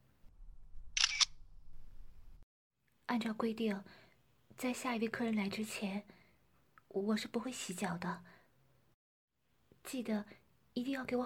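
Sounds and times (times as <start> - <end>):
camera shutter snapping as a photo is taken: 1.0 - 1.4
speech: 3.1 - 4.0, 4.6 - 6.2, 6.9 - 8.4, 9.8 - 11.2.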